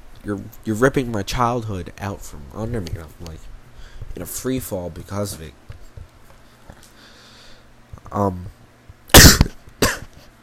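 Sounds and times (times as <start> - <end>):
speech: 0.2 - 3.5, 4.2 - 5.7, 8.1 - 8.6
person coughing: 9.1 - 10.2.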